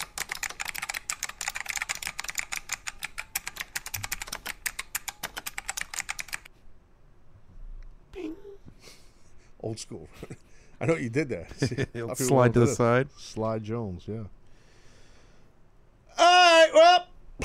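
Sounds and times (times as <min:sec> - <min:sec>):
typing an email on a computer keyboard: 0:00.0 - 0:06.5
speech: 0:09.6 - 0:14.4.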